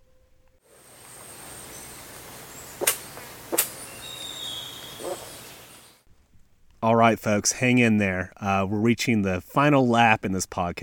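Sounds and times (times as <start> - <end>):
vultures hissing: 0.7 - 6.0
speech: 6.8 - 10.8.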